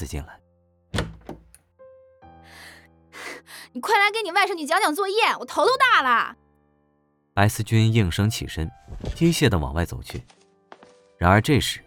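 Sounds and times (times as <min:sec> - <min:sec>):
speech: 0:00.0 - 0:00.4, 0:03.8 - 0:06.4, 0:07.4 - 0:10.4, 0:11.2 - 0:11.8
bedroom door flung open: 0:01.0 - 0:01.6.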